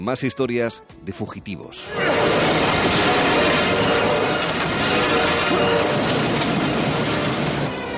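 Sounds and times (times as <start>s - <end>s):
speech: 0.0s - 3.2s
grinding metallic crashing of a train: 1.9s - 7.7s
crashed train approaching at full speed: 1.9s - 7.8s.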